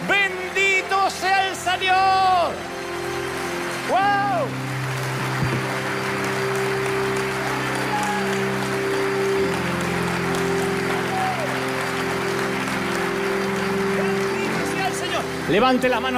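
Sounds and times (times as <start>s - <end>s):
large crowd applauding: 0.0s - 16.1s
sustained keyboard chords: 0.0s - 16.1s
speech: 15.5s - 16.1s.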